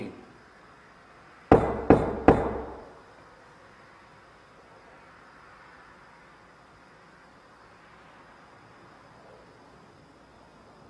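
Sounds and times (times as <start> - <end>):
knocking: 1.5 - 2.9.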